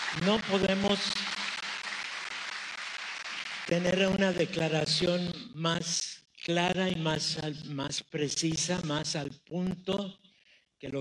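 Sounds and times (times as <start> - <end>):
crowd applauding: 0.0 - 5.2
speech: 0.1 - 1.4, 3.7 - 10.2, 10.8 - 10.9.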